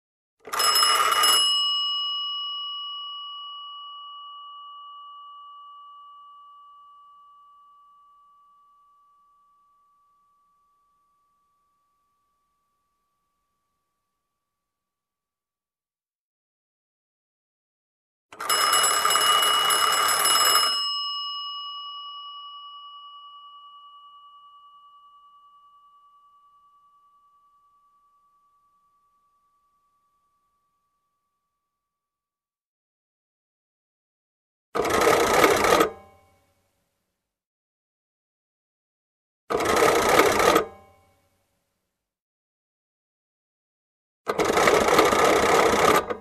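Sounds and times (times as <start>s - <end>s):
old telephone ringing: 0.4s - 8.2s, 18.4s - 27.2s, 34.8s - 36.1s, 39.6s - 40.7s, 44.3s - 46.1s.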